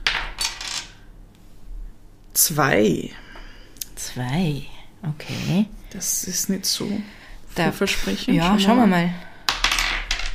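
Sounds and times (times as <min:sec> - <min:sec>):
speech: 0:02.4 - 0:03.2, 0:04.0 - 0:09.3
die rolling and clattering across a hard tabletop: 0:09.5 - 0:10.3.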